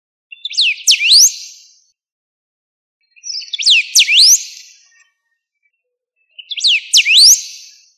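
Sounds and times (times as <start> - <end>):
bird singing sharp up-and-down sweeping whistles: 0.3 - 1.9, 3.0 - 5.2, 6.2 - 7.9.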